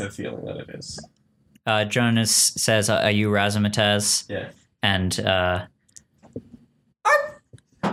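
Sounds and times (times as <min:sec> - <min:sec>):
speech: 0:00.0 - 0:05.7
person imitating a Pomeranian dog barking: 0:07.0 - 0:07.5.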